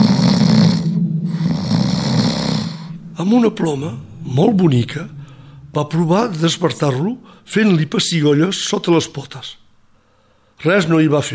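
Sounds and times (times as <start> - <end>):
loud snoring: 0.0 - 5.9
speech: 3.3 - 5.2, 5.8 - 9.6, 10.6 - 11.3.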